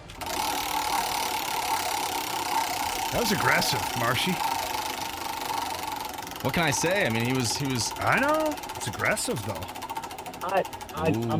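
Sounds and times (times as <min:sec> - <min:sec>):
prize wheel being spun: 0:00.0 - 0:11.3
speech: 0:03.1 - 0:04.5, 0:06.4 - 0:09.8, 0:10.4 - 0:11.3.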